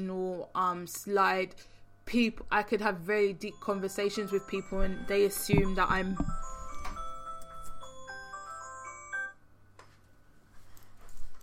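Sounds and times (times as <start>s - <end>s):
speech: 0.0s - 6.5s
phone alarm electronic melody with chiming notes: 3.4s - 9.5s.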